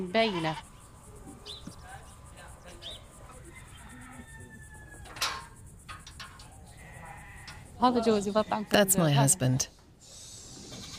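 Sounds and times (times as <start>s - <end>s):
sheep bleating in a stall: 0.0s - 0.6s, 6.7s - 8.9s
speech: 0.0s - 0.7s, 7.8s - 9.8s.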